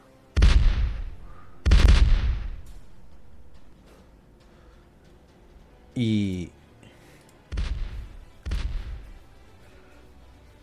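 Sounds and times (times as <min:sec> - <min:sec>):
distant cannon blasts booming with heavy rumble: 0:00.4 - 0:02.8, 0:07.5 - 0:09.2
speech: 0:06.0 - 0:06.6.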